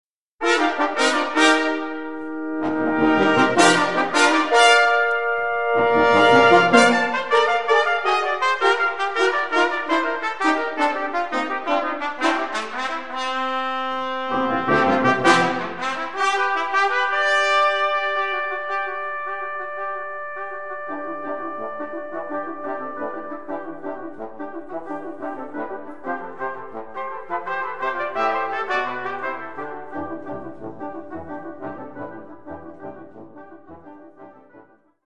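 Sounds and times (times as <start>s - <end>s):
brass music: 0.4s - 35.0s.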